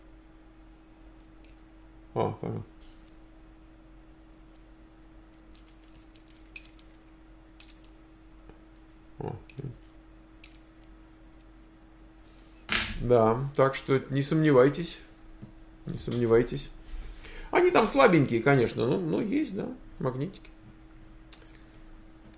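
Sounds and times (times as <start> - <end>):
metal keys and bottle opener clinking: 1.2 - 1.7, 5.3 - 8.0, 8.7 - 11.6
speech: 2.2 - 2.8, 13.1 - 15.1, 16.0 - 16.8, 17.7 - 20.5.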